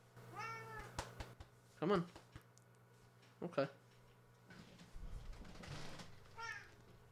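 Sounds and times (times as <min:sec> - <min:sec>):
low hum: 0:00.0 - 0:07.1
cat meowing while being picked up: 0:00.3 - 0:00.9, 0:06.3 - 0:06.8
speech: 0:01.8 - 0:02.2, 0:03.4 - 0:03.8.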